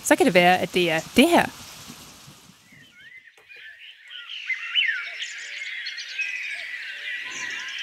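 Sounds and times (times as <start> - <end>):
speech: 0.1 - 1.6
birds chirping and singing in a chorus of trills and tweets: 2.6 - 7.8.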